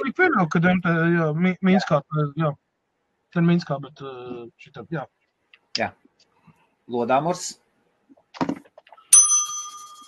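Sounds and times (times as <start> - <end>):
speech: 0.2 - 2.6, 3.3 - 5.2, 5.8 - 6.0, 6.9 - 7.6
small bell struck, bright metallic tone: 9.1 - 10.0.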